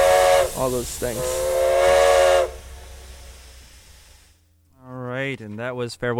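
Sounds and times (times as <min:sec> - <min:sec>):
steam locomotive whistle blast with breathy hiss: 0:00.0 - 0:04.2
speech: 0:00.6 - 0:02.0, 0:05.3 - 0:06.1.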